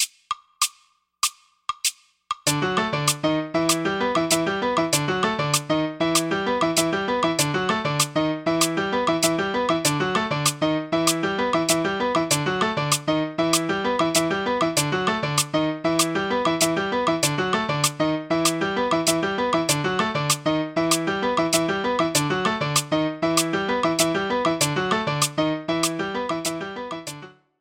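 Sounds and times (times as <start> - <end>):
fast tumbao rhythm: 0.0 - 27.2.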